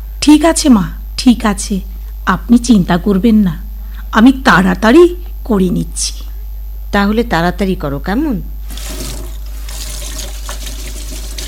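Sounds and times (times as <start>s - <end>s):
speech: 0.2s - 6.3s, 6.9s - 9.0s
running tap water splashing while washing dishes: 8.6s - 11.4s.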